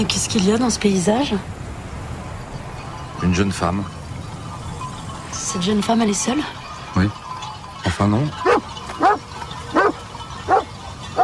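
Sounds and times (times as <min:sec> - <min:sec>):
speech: 0:00.0 - 0:01.6, 0:03.2 - 0:04.0, 0:05.4 - 0:07.2, 0:07.9 - 0:08.5
nervous dog barking: 0:08.4 - 0:11.2.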